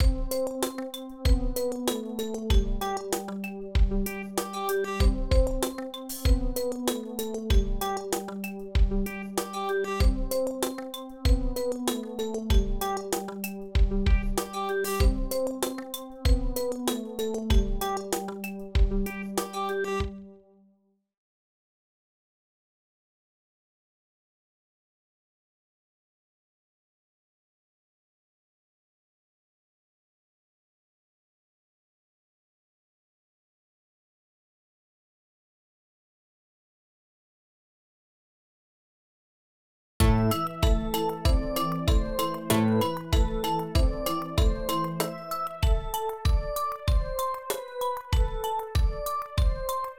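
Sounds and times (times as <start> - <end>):
synthesizer drums: 0.0 - 20.1, 40.0 - 49.8.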